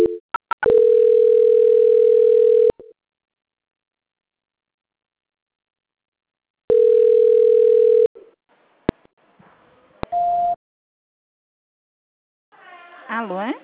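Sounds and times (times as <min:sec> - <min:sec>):
telephone line tones during a call transfer: 0:00.0 - 0:02.8, 0:06.7 - 0:08.1.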